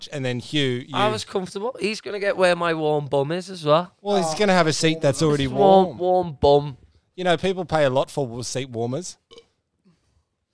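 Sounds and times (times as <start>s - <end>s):
speech: 0.1s - 9.4s
short burp: 9.2s - 9.6s.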